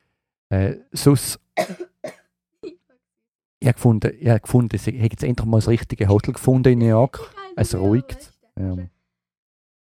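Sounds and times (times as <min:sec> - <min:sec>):
speech: 0:00.5 - 0:02.2, 0:03.6 - 0:08.9
person coughing: 0:01.6 - 0:02.8.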